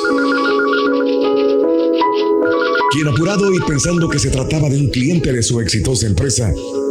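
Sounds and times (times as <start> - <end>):
telephone ringing with an electronic warble: 0.0 - 4.7
speech: 2.9 - 6.8.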